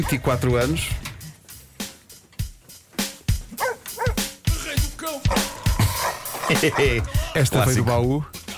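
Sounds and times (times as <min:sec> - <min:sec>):
speech: 0:00.0 - 0:01.0, 0:06.5 - 0:08.4
radio segment theme jingle of dog barks, yips and yelps: 0:03.6 - 0:04.3, 0:05.3 - 0:08.4
laughter: 0:06.2 - 0:08.0.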